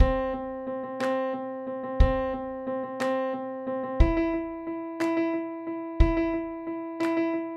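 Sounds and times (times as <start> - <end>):
trecillo rhythm: 0.0 - 1.3, 2.0 - 3.2, 4.0 - 5.4, 6.0 - 7.4.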